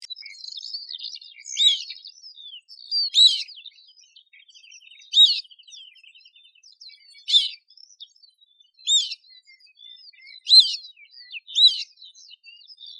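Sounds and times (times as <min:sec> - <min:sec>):
northern lapwing chick calling: 0:01.5 - 0:02.0, 0:03.0 - 0:03.5, 0:05.1 - 0:05.4, 0:07.2 - 0:07.7, 0:08.8 - 0:09.2, 0:10.4 - 0:12.0.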